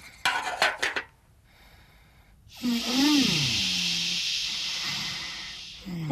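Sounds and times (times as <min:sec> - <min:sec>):
kettle hissing with heat: 0:02.5 - 0:06.0
low wavering whine: 0:02.6 - 0:06.0.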